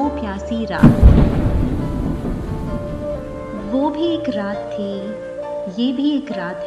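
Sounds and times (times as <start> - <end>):
speech: 0.1 - 1.4, 3.7 - 6.6
heavy rain downpour in a thunderstorm: 0.8 - 4.2
deep low thunder rumble: 0.8 - 4.6.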